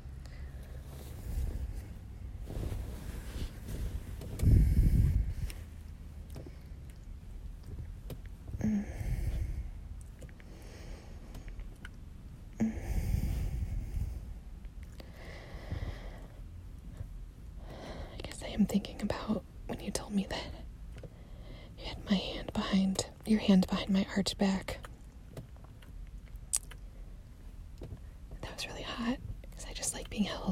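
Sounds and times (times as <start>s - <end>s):
low steady rush: 0.0s - 25.4s, 26.9s - 30.4s
slow airy breathing: 0.1s - 6.9s, 8.5s - 11.7s, 12.6s - 16.5s, 17.6s - 18.2s, 21.1s - 21.8s
speech: 18.6s - 20.6s, 22.1s - 24.8s.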